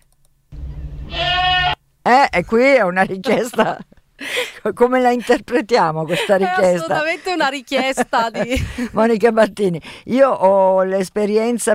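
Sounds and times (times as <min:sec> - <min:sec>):
goat in heat bleating: 0:01.1 - 0:01.8
speech: 0:02.3 - 0:11.7
laughter: 0:03.0 - 0:04.4, 0:05.1 - 0:09.0.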